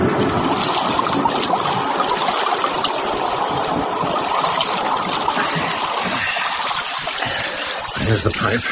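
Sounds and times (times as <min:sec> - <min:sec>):
person swimming across moat water at night: 0:00.2 - 0:08.7
speech: 0:08.3 - 0:08.7.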